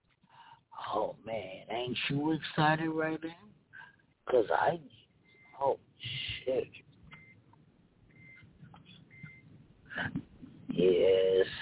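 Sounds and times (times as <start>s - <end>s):
speech: 0.9s - 3.5s, 4.3s - 5.0s, 5.6s - 6.8s, 10.0s - 10.2s, 10.8s - 11.5s
car seatbelt warning chime beeping: 7.1s - 7.4s, 8.1s - 9.5s.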